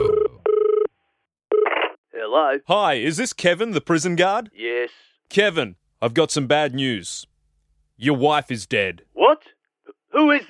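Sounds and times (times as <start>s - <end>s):
telephone ringing for a radio prank call: 0.0s - 1.8s
speech: 2.3s - 7.3s, 8.0s - 9.5s, 10.1s - 10.4s.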